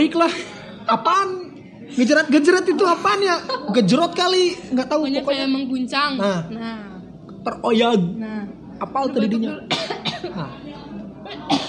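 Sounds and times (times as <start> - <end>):
speech: 0.0 - 10.6
person coughing: 9.7 - 10.5, 11.3 - 11.6.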